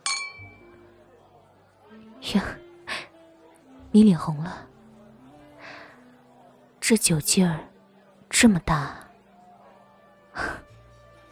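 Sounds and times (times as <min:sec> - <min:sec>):
glasses clinking in a toast: 0:00.0 - 0:00.7
speech: 0:02.2 - 0:02.6, 0:03.9 - 0:04.7, 0:06.9 - 0:07.7, 0:08.3 - 0:09.0.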